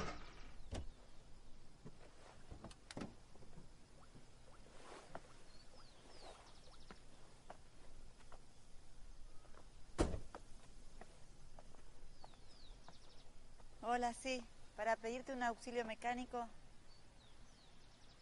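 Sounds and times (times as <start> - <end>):
faint birds chirping outdoors: 0.0 - 1.7, 3.2 - 9.8, 10.8 - 18.2
quiet clicks and shuffling of a woman climbing out of a small car: 1.8 - 8.6, 9.4 - 13.8
firm small car door thump: 10.0 - 10.3
speech: 13.9 - 16.6.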